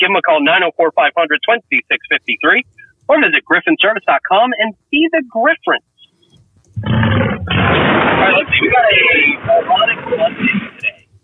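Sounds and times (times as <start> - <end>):
speech: 0.0 - 5.9, 6.8 - 11.0
motorcycle-like engine growl sound effect: 6.8 - 8.2.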